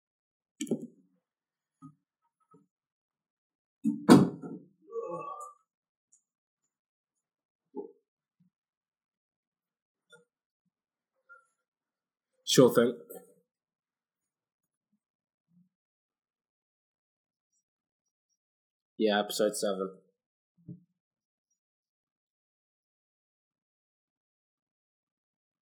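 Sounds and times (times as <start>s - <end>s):
door pushed shut with a solid thud: 3.9s - 4.6s
speech: 12.5s - 13.1s, 19.0s - 20.0s.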